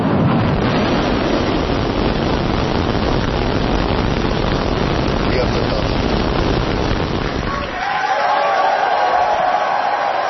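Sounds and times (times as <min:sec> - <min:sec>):
Starship rocket launch roar: 0:00.0 - 0:08.6
crowd cheering and shouting: 0:07.4 - 0:10.2.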